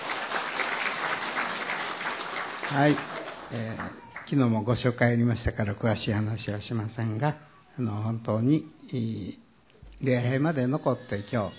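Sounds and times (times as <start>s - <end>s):
church service audience clapping to welcome guests: 0.0s - 4.5s
speech: 2.7s - 9.4s, 10.0s - 11.5s.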